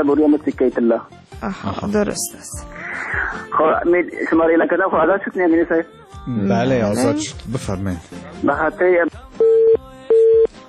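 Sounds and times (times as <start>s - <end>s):
speech: 0.0s - 9.2s
caller's voice on a phone line: 3.5s - 9.2s
phone line tone beeps as a call is cut off: 9.4s - 10.5s.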